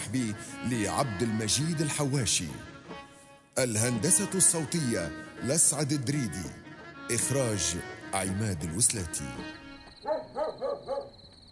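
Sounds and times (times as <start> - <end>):
speech: 0.1 - 2.8, 3.6 - 10.9
dogs barking at night: 10.0 - 11.2.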